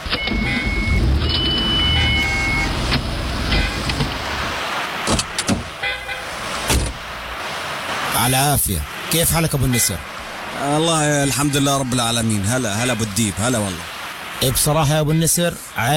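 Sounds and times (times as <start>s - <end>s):
car engine rumble while being parked: 0.0s - 14.6s
speech: 8.2s - 15.9s.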